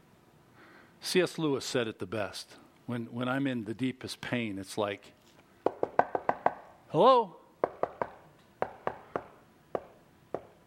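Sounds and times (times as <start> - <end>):
speech: 1.0 - 5.2, 6.9 - 7.4
sharp solid knocks: 5.6 - 6.7, 7.6 - 10.6.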